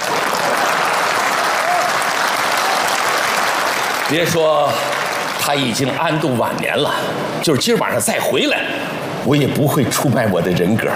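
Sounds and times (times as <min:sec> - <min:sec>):
sustained applause from a large audience: 0:00.0 - 0:05.8
speech: 0:04.1 - 0:10.9.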